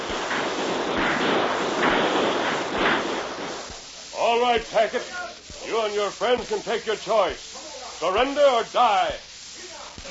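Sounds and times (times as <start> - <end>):
volley of rifle shots fired over a stockade: 0.0 - 3.9
speech: 4.4 - 9.3.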